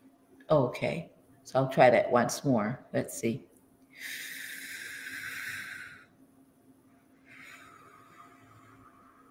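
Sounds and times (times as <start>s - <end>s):
speech: 0.5s - 4.3s
slow deep belly breathing, inhaling and exhaling: 3.9s - 6.2s, 7.2s - 9.2s.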